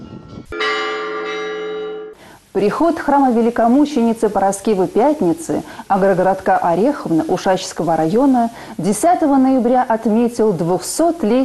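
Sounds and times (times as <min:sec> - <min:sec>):
Orthodox church bells in canonical ringing at a village church: 0:00.5 - 0:02.2
speech: 0:02.6 - 0:11.4.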